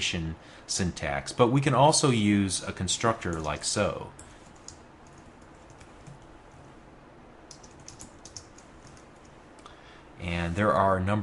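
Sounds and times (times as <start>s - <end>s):
speech: 0.0s - 4.3s, 10.2s - 11.2s
soft steady hiss: 0.0s - 11.2s
typing on a computer keyboard while entering a date into code: 4.6s - 6.3s, 7.5s - 9.4s.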